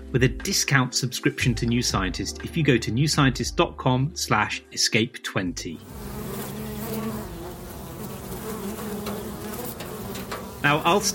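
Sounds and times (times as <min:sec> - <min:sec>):
speech: 0:00.1 - 0:06.1, 0:10.6 - 0:11.1
swarm of bees buzzing: 0:05.8 - 0:11.1.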